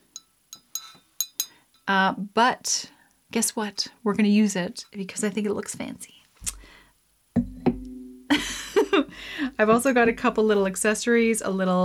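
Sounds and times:
daiquiri glass clinking as it is handled while making a cocktail: 0.0 - 1.6
speech: 1.9 - 6.2, 9.5 - 11.8.

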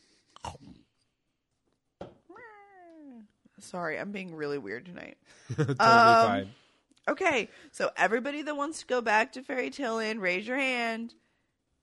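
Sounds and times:
person imitating a cat meowing: 2.3 - 3.3
speech: 3.6 - 11.2.

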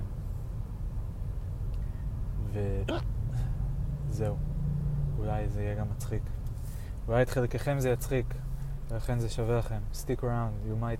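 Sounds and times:
steady low rumble: 0.0 - 10.9
speech: 2.6 - 3.2, 4.1 - 4.5, 5.2 - 6.4, 7.1 - 10.9
man burping: 2.8 - 3.1.

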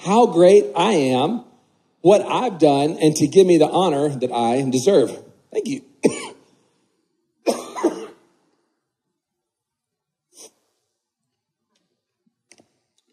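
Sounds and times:
speech: 0.0 - 5.9
speaker coughing harshly: 6.0 - 6.5, 7.4 - 8.3.

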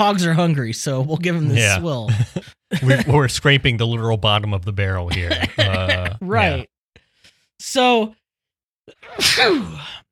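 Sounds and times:
speech: 0.0 - 6.7, 7.6 - 8.2, 9.0 - 10.0
laughter: 2.1 - 3.5, 5.1 - 6.6
person sneezing: 9.0 - 10.0.

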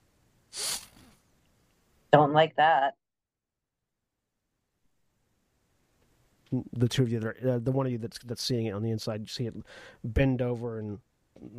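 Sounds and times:
voice imitating a long drawn-in animal-like sniff: 0.5 - 1.1
speech: 2.1 - 3.0, 6.5 - 11.5.

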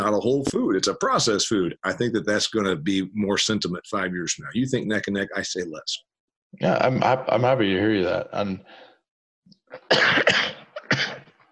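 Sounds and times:
speech: 0.0 - 8.9, 9.7 - 11.2
person coughing harshly: 9.8 - 11.4.

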